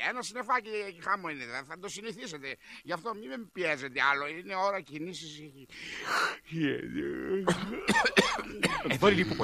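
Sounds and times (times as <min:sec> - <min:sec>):
speech: 0:00.1 - 0:09.4
strained groaning vocal sounds: 0:06.4 - 0:08.6
coughing: 0:06.9 - 0:09.4
throat clearing: 0:07.4 - 0:09.4.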